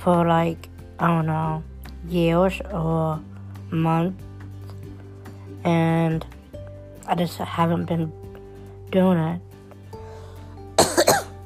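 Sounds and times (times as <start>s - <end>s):
speech: 0.0s - 4.3s, 5.6s - 6.3s, 7.1s - 8.2s, 8.9s - 9.5s
person coughing: 10.8s - 11.4s.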